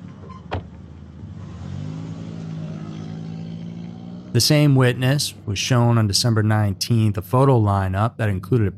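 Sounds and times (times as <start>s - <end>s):
car door shutting: 0.0s - 0.9s
car engine accelerating as car speeds away from an apartment complex: 0.0s - 7.5s
speech: 4.4s - 8.7s.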